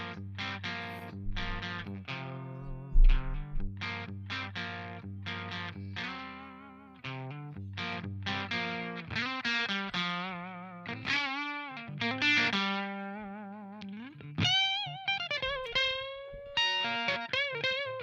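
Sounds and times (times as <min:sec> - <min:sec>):
distorted electric guitar with crunchy Marshall-style amp tone: 0:00.0 - 0:18.0.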